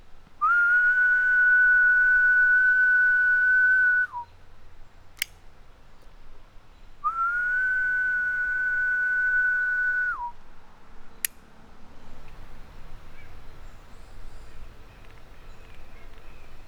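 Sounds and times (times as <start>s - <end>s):
person whistling a high tone imitating a male cicada's mating call: 0.4s - 4.3s, 7.1s - 10.4s
sharp click imitating a female cicada's clicking response: 5.2s - 5.4s, 12.1s - 16.6s.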